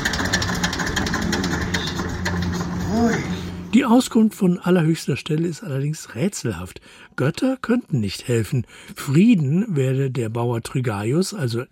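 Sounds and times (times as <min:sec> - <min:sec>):
tractor engine idling: 0:00.0 - 0:03.8
speech: 0:03.8 - 0:11.6.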